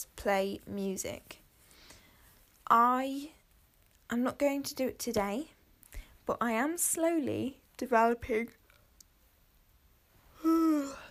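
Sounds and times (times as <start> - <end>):
speech: 0.0 - 1.4, 2.7 - 3.4, 4.1 - 5.6, 6.3 - 8.6
short voiced breathy yawn: 10.4 - 11.0.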